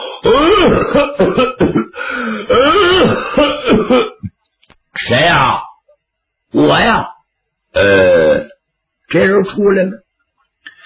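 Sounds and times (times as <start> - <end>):
man grunting: 0.2 - 1.0, 2.4 - 3.8, 7.8 - 8.5
man acting out raspy coughs and throat clearing of a man of about sixty: 0.2 - 4.4
speech: 0.3 - 1.8, 5.1 - 5.6, 7.8 - 8.4, 9.1 - 10.0.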